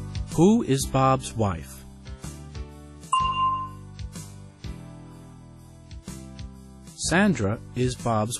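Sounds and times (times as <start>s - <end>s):
speech: 0.4s - 1.8s, 7.1s - 8.3s
bell ding in a language lesson: 3.1s - 3.9s
steady instrumental music: 3.1s - 4.4s.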